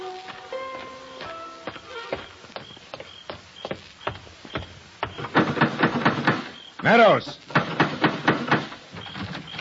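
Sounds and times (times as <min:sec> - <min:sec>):
heavy fists pounding on a house door: 0:03.7 - 0:06.5, 0:07.5 - 0:08.7.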